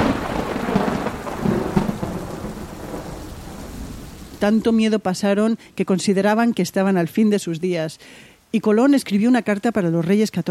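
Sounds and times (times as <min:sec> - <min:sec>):
deep thunder rumbling: 0:00.0 - 0:04.9
steady rain: 0:00.0 - 0:10.4
speech: 0:04.4 - 0:10.4.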